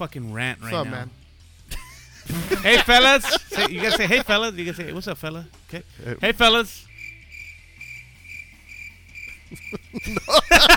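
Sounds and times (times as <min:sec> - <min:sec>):
speech: 0:00.0 - 0:01.2, 0:02.2 - 0:06.9, 0:09.5 - 0:10.7
laughter: 0:01.7 - 0:05.0, 0:09.5 - 0:10.7
crickets chirping: 0:06.8 - 0:10.2.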